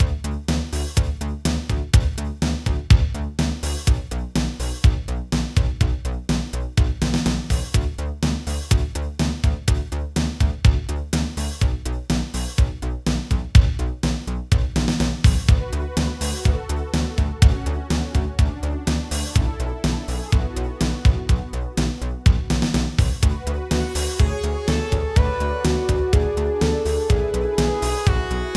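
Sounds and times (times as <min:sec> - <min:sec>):
drums with gated reverb: 0:00.0 - 0:28.5.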